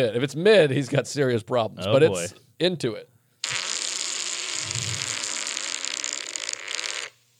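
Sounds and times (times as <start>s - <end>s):
speech: 0.0s - 3.1s
man farting: 3.4s - 7.2s.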